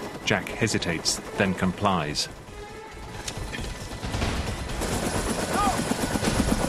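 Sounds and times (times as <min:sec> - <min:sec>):
speech: 0:00.3 - 0:02.4
rapid continuous gunfire in a firefight near a helicopter: 0:03.4 - 0:06.6.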